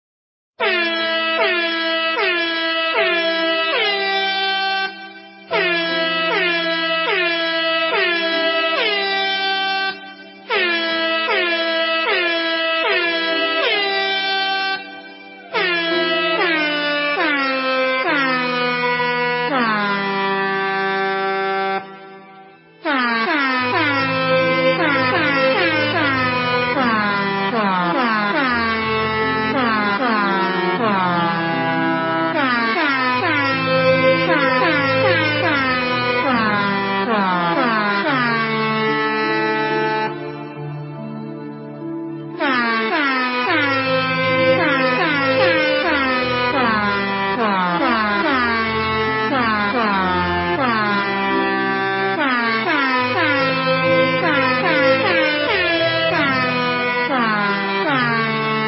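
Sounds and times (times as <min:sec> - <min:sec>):
air horn: 0:00.6 - 0:58.6.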